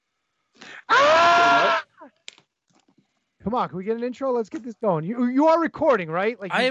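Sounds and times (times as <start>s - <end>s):
man yelping: 0.8s - 1.8s
man screaming in imitation of a wrestler: 0.8s - 2.0s
speech: 3.5s - 6.6s.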